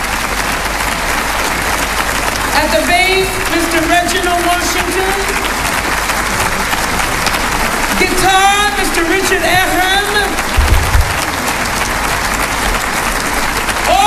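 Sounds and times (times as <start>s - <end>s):
steady dense applause from a large audience: 0.0s - 14.0s
speech: 2.6s - 5.6s, 7.9s - 10.5s.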